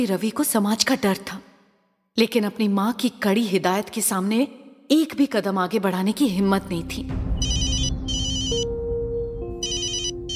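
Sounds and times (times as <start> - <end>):
speech: 0.0 - 1.5, 2.2 - 7.3
telephone ringing in electronic trill bursts: 7.4 - 8.7, 9.6 - 10.3.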